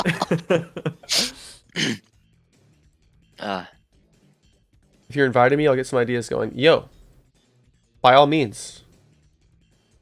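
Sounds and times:
laughter: 0:00.0 - 0:01.3
speech: 0:00.0 - 0:02.1, 0:03.4 - 0:03.8, 0:05.1 - 0:07.0, 0:08.0 - 0:08.8
person mimicking coughing with harsh breathy bursts: 0:01.0 - 0:02.0.

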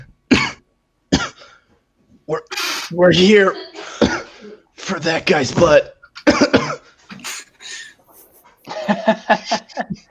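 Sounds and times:
speech: 0:02.3 - 0:03.7, 0:04.9 - 0:06.0, 0:08.9 - 0:10.1
person coughing harshly: 0:03.8 - 0:04.6, 0:06.3 - 0:07.5
laughter: 0:08.1 - 0:10.1.

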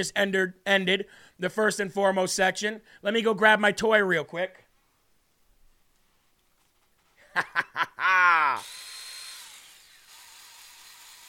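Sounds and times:
speech: 0:00.0 - 0:04.6, 0:07.4 - 0:07.9
laughter: 0:07.2 - 0:08.6
battery-powered TacRite mini chainsaw buzzing: 0:08.6 - 0:11.2.

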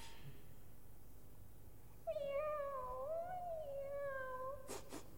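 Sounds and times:
cat meowing: 0:02.1 - 0:04.8.

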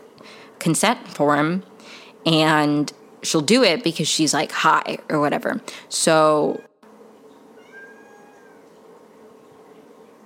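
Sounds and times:
speech: 0:00.6 - 0:06.7
cat meowing: 0:07.6 - 0:08.7.

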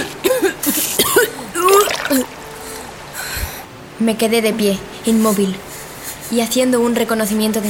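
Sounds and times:
person coughing and sputtering up river water: 0:00.0 - 0:02.3
wet gurgling and splashy spitting: 0:01.6 - 0:02.4
speech: 0:02.1 - 0:02.4, 0:04.0 - 0:05.7, 0:06.3 - 0:07.6.

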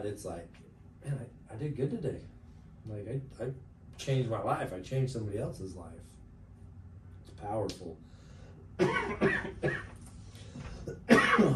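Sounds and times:
speech: 0:00.0 - 0:06.2, 0:07.4 - 0:08.1, 0:08.8 - 0:09.9
harsh coughs: 0:08.8 - 0:10.0, 0:10.6 - 0:11.5.

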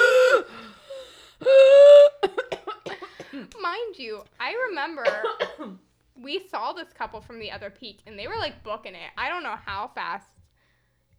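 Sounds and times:
person imitating heavy gasping breathing after a hike: 0:00.0 - 0:02.2
speech: 0:03.7 - 0:10.3.

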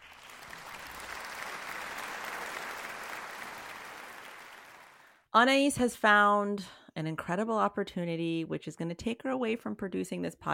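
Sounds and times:
large crowd applauding: 0:00.0 - 0:05.2
speech: 0:05.4 - 0:10.5.

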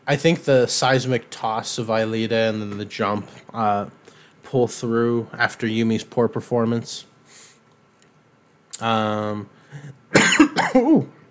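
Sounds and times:
speech: 0:00.1 - 0:07.1, 0:08.8 - 0:11.2
dry raspy cough: 0:09.8 - 0:11.1.

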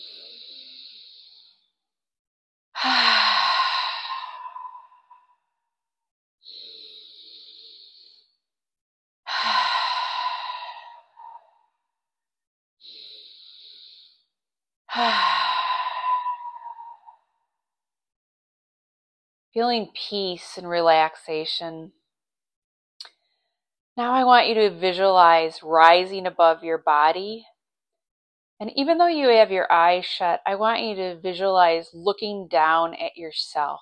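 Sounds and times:
slow deep breaths with loud sighing exhales: 0:00.0 - 0:01.7, 0:02.8 - 0:05.3, 0:06.4 - 0:08.3, 0:09.3 - 0:11.6, 0:12.8 - 0:14.3, 0:14.9 - 0:17.2
speech: 0:19.6 - 0:22.0, 0:24.0 - 0:27.5, 0:28.6 - 0:33.8.

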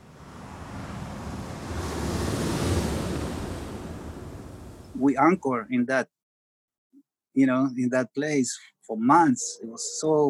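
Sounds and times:
ocean surf breaking at a beach in Búzios: 0:00.0 - 0:05.1
wind rumble: 0:00.0 - 0:05.1
speech: 0:05.0 - 0:06.2, 0:07.4 - 0:10.2.

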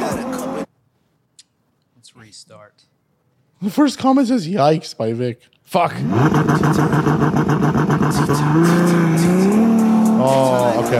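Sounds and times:
speech: 0:02.1 - 0:03.0, 0:03.6 - 0:10.9
Mazda car engine accelerating hard in launch mode: 0:06.0 - 0:10.9.

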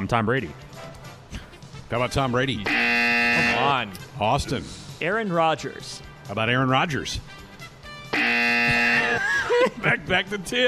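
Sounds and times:
speech: 0:00.1 - 0:00.9, 0:01.9 - 0:02.8, 0:03.4 - 0:07.4, 0:09.6 - 0:10.6
electronic game show buzzer during a football quarterback trivia game: 0:02.6 - 0:03.8, 0:08.1 - 0:09.3
laughter: 0:09.0 - 0:10.4.

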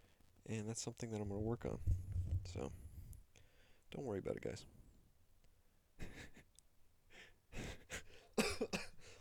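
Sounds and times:
speech: 0:00.5 - 0:02.8, 0:03.9 - 0:04.8
harsh raspy smoker's cough: 0:08.4 - 0:09.0.

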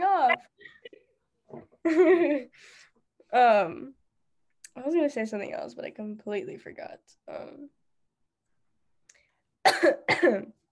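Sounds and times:
speech: 0:01.9 - 0:04.0, 0:04.8 - 0:07.8, 0:09.8 - 0:10.6
harsh breathy coughs: 0:09.6 - 0:10.5.

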